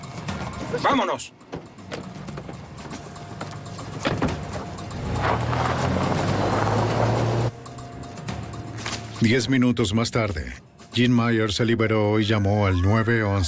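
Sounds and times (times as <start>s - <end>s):
speech: 0.7s - 2.1s, 9.2s - 13.4s
clunks and rattles: 1.4s - 7.1s
getaway van starting up and revving as it pulls away: 1.6s - 8.1s.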